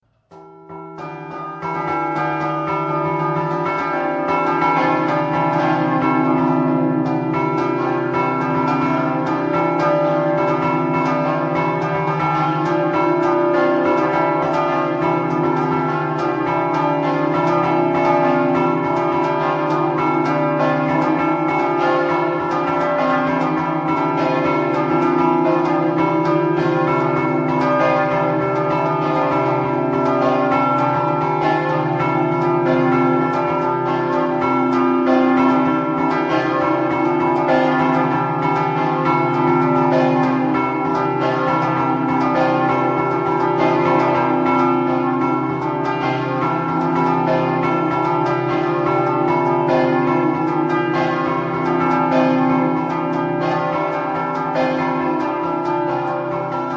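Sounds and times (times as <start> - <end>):
bells ringing in Bagnarola: 0.0 - 56.7.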